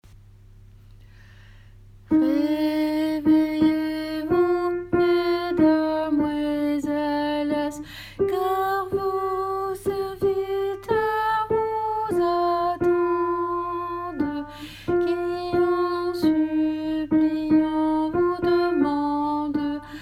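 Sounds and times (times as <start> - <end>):
alto voice singing: 2.1 - 20.0.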